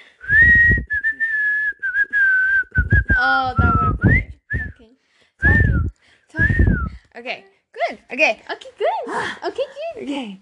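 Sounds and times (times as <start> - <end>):
person whistling a bouncy tune: 0.2 - 7.0
speech: 7.2 - 10.4.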